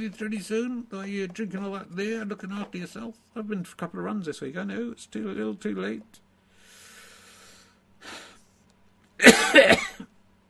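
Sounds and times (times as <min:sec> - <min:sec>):
speech: 0:00.0 - 0:06.2, 0:08.0 - 0:08.3, 0:09.2 - 0:09.9
man coughing: 0:09.2 - 0:10.1.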